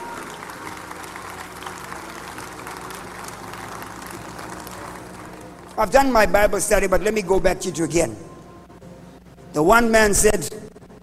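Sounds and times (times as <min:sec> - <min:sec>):
crowd clapping steadily and densely: 0:00.0 - 0:06.2
speech: 0:05.8 - 0:08.3, 0:09.6 - 0:10.6.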